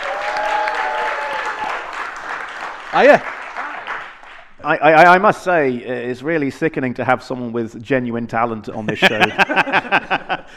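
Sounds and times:
audience applauding: 0.0s - 4.6s
speech: 2.9s - 3.4s, 4.6s - 10.5s
laughter: 8.8s - 10.5s.

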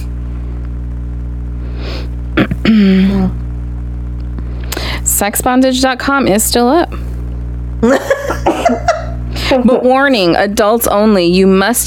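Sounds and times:
low steady hum: 0.0s - 11.8s
person sneezing forcefully: 1.9s - 3.4s
speech: 5.2s - 7.1s, 7.8s - 8.0s, 9.5s - 11.8s
laughter: 7.8s - 10.0s.

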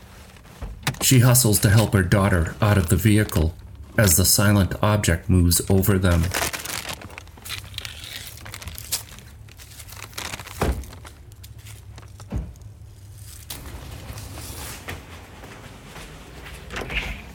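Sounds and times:
steady low rumble: 0.0s - 17.3s
front door of a house opening and closing: 0.6s - 1.2s, 16.6s - 17.3s
speech: 1.0s - 6.6s.

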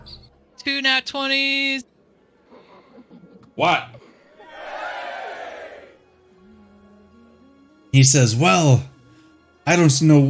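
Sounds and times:
speech: 0.1s - 1.9s, 3.6s - 4.0s, 7.9s - 8.9s, 9.6s - 10.2s
dense crowd roaring and cheering: 4.4s - 6.0s.

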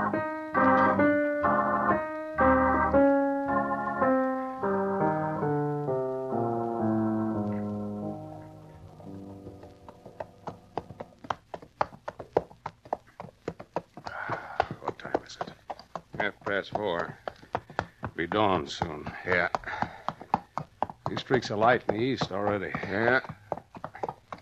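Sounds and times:
orchestral music with sustained tones: 0.0s - 10.0s
hoofbeats of horses galloping across dry dusty country: 8.6s - 24.4s
speech: 16.6s - 17.2s, 18.2s - 19.6s, 21.3s - 23.3s.

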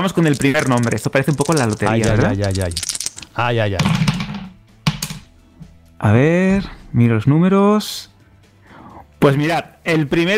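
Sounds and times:
speech: 0.0s - 4.2s, 6.0s - 8.1s, 9.2s - 10.3s
dice clattering and tumbling: 0.0s - 5.2s.

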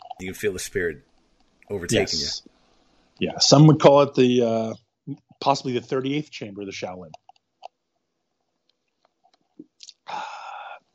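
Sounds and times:
speech: 0.2s - 1.1s, 1.7s - 2.5s, 3.2s - 7.2s
wet mouth clicks and smacks: 9.6s - 10.1s.

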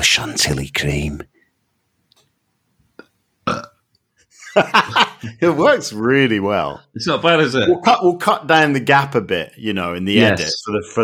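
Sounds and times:
speech: 0.0s - 1.3s, 4.6s - 11.0s
loud burp: 3.0s - 3.8s
laughter: 4.3s - 5.7s.

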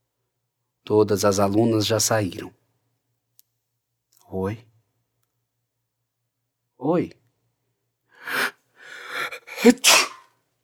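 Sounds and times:
speech: 0.9s - 2.6s, 4.3s - 4.7s, 6.8s - 7.2s, 9.6s - 10.1s
breathy catching inhales before a sneeze: 8.1s - 9.6s
person sneezing: 8.3s - 10.4s.

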